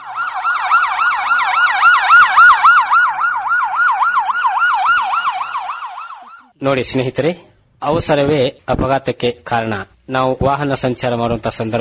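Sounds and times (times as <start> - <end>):
ambulance siren called to a road accident wailing: 0.0 - 6.6
speech: 6.6 - 11.7.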